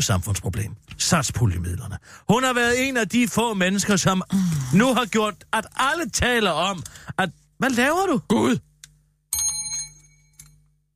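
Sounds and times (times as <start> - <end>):
speech: 0.0 - 8.7
bell ringing: 9.3 - 10.6.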